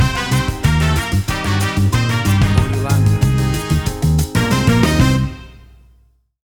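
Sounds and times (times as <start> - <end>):
acid jazz bossa nova fusion music stinger: 0.0 - 5.5.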